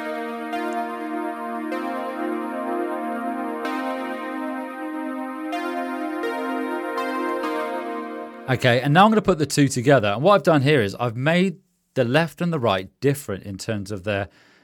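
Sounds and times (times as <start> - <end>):
synth chords through a bit crusher at 16-bit resolution and 4x downsampling: 0.0 - 8.8
speech: 8.5 - 14.5.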